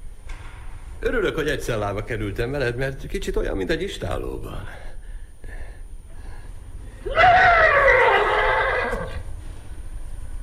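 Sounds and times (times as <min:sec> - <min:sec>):
speech: 0:01.0 - 0:04.9
thirsty horse neighing: 0:07.0 - 0:09.3.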